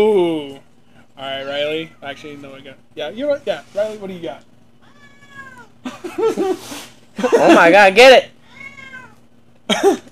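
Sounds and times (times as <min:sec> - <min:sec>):
speech: 0:00.0 - 0:00.6, 0:01.2 - 0:04.5, 0:05.8 - 0:08.4, 0:09.7 - 0:10.1
cat meowing in a long drawn-out wail: 0:04.8 - 0:05.8, 0:08.4 - 0:09.2.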